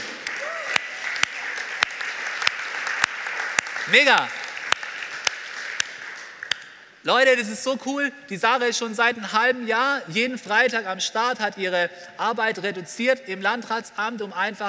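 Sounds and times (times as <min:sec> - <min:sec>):
audience applause: 0:00.0 - 0:06.6
speech: 0:03.9 - 0:04.4, 0:07.0 - 0:14.6.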